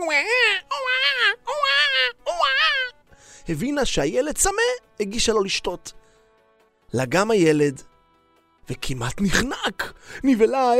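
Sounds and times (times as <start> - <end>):
child crying: 0.0 - 3.0
speech: 3.5 - 6.0, 6.9 - 7.9, 8.7 - 10.7.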